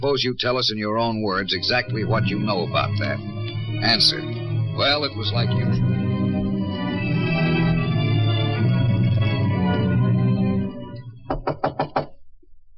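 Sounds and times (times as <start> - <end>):
speech: 0.0 - 6.0
music: 0.7 - 12.2
quick firm knocks on a door: 11.3 - 12.2.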